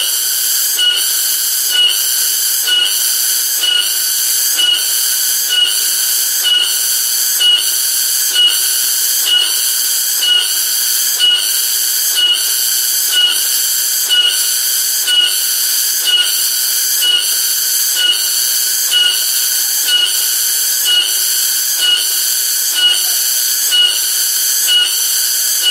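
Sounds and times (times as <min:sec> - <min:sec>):
cicada buzzing: 0:00.0 - 0:25.6.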